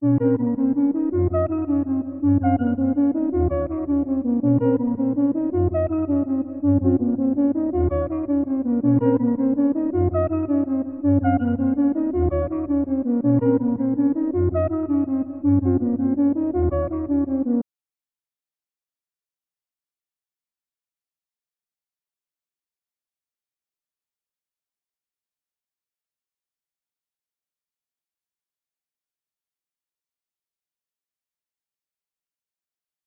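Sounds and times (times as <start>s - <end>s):
main melody loop in A sharp minor: 0.0s - 17.6s.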